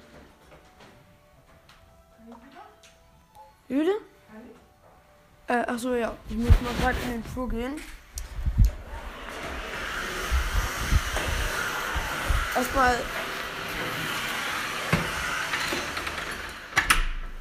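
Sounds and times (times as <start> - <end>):
speech: 3.7 - 4.5, 5.5 - 8.0, 12.6 - 13.2
vacuum cleaner droning: 8.5 - 17.3.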